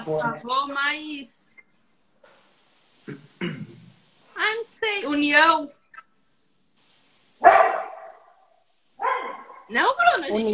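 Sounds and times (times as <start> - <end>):
speech: 0.0 - 1.6, 3.1 - 3.7, 4.4 - 5.8, 9.7 - 10.5
dog barking: 7.4 - 9.7.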